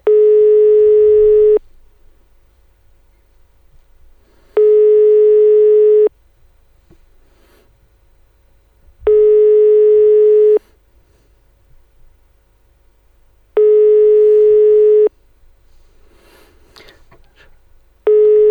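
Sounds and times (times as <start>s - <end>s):
telephone ringback tone on an outgoing call during a live radio broadcast: 0.0s - 1.6s, 4.6s - 6.1s, 9.1s - 10.6s, 13.6s - 15.1s, 18.1s - 18.4s.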